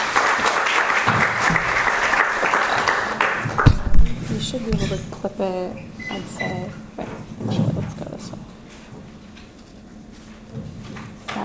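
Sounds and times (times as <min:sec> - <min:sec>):
audience applauding to welcome a speaker at the University of Iowa: 0:00.0 - 0:04.2
speech: 0:04.5 - 0:06.8.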